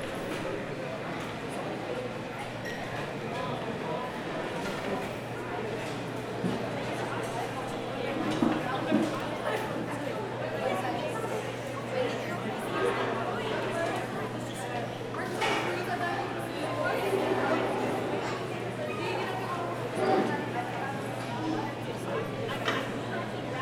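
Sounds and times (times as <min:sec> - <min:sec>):
overlapping voices in a busy mall: 0:00.0 - 0:23.6.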